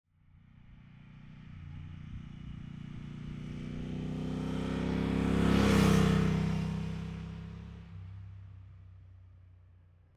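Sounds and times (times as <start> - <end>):
distant motorbike passing by: 2.1 - 7.8.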